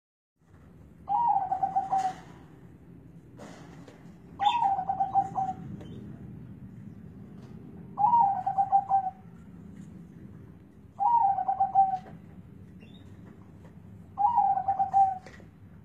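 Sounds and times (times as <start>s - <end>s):
zebra dove perkutut bubbling coo phrase: 1.0s - 2.6s, 4.4s - 6.0s, 8.0s - 9.4s, 11.0s - 12.3s, 14.1s - 15.5s.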